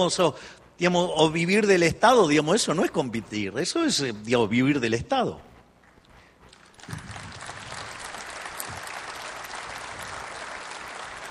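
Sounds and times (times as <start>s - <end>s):
speech: 0.0s - 5.5s
large audience applauding: 6.8s - 11.2s.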